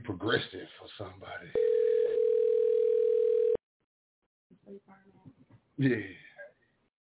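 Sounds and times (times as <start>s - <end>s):
speech: 0.2s - 0.7s, 5.8s - 6.2s
telephone dial tone: 1.6s - 3.6s.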